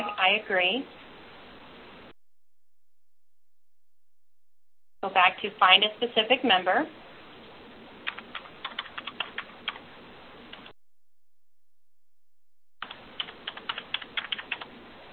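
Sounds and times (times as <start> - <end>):
speech: 0.2 - 1.0, 5.0 - 7.0
clicky typing on a computer keyboard: 8.1 - 9.8, 12.8 - 14.7.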